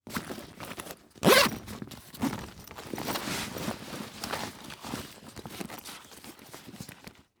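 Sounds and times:
rummaging through a duffle bag: 0.0 - 7.3
duffle bag unzipping: 1.2 - 1.8.

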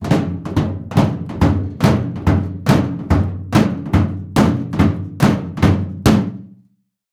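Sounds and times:
high heels running on a metal platform: 0.0 - 5.6.

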